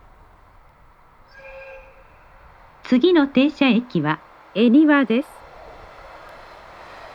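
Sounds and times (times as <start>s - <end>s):
Rapid Airport train departing from platform: 0.0s - 7.1s
faint steady rail rumble: 0.0s - 7.1s
brief high whistle-like tones: 1.2s - 2.8s
speech: 2.9s - 5.4s.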